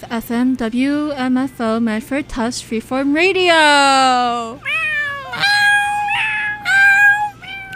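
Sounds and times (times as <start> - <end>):
speech: 0.0 - 4.8
person imitating cat meows: 4.6 - 7.7.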